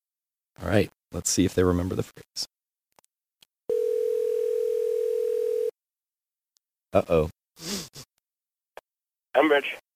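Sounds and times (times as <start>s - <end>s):
speech: 0.6s - 2.5s, 6.9s - 8.1s, 9.4s - 9.8s
telephone dial tone as a number is about to be dialed: 3.7s - 5.7s.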